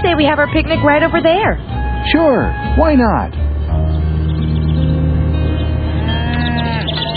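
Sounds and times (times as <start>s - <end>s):
farmyard background: 0.0s - 7.1s
speech: 0.1s - 3.4s
cows mooing in long low calls: 5.6s - 7.1s.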